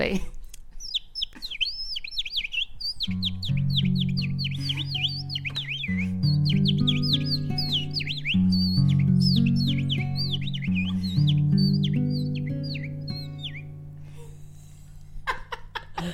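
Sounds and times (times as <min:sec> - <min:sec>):
speech: 0:00.0 - 0:00.4
birds chirping and twittering: 0:00.0 - 0:15.3
steady low musical tones: 0:02.7 - 0:15.3
laughter: 0:04.5 - 0:06.2, 0:14.0 - 0:16.1.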